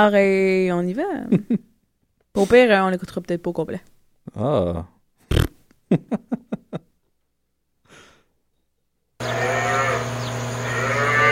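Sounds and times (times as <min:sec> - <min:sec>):
speech: 0:00.0 - 0:01.7, 0:02.4 - 0:04.9, 0:05.9 - 0:06.5
laughter: 0:05.9 - 0:06.8
soft breath: 0:07.8 - 0:08.4
herd of cows mooing: 0:09.2 - 0:11.2.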